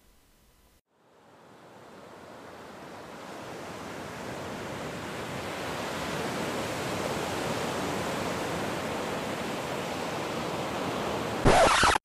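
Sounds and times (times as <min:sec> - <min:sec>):
ocean surf: 0:01.2 - 0:12.0
brief harsh burst: 0:11.4 - 0:12.0.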